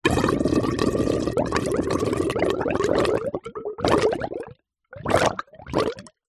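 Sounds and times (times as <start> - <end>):
water gurgling and bubbling: 0.0 - 6.2.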